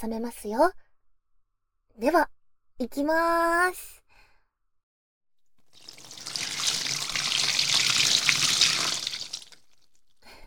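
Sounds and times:
speech: 0.0 - 0.9, 2.0 - 4.0
running water during hair washing: 5.6 - 10.0.

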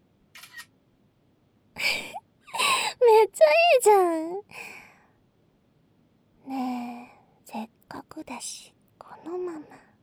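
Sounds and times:
camera shutter firing as a photo is taken: 0.3 - 0.7
speech: 3.4 - 4.6, 8.4 - 9.8.

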